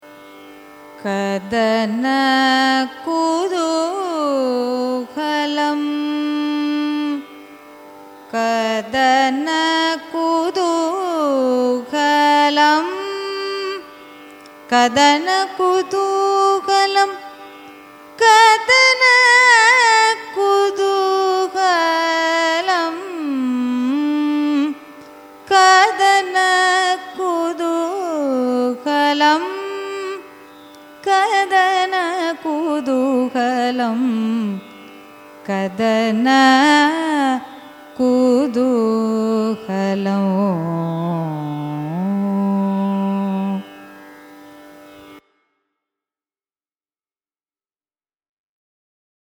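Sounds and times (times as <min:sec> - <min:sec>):
Carnatic raga music: 0:00.0 - 0:45.6.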